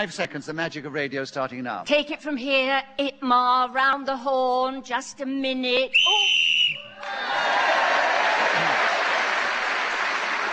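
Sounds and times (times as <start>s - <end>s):
speech: 0.0s - 7.6s
referee whistle blown to end a round of a game: 5.9s - 7.0s
audience applause: 7.0s - 10.5s.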